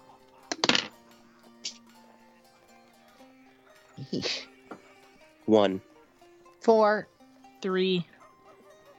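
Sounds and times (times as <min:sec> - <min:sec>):
dice rolling on a tabletop: 0:00.5 - 0:00.9
speech: 0:04.0 - 0:04.5, 0:05.5 - 0:05.9, 0:06.6 - 0:08.1.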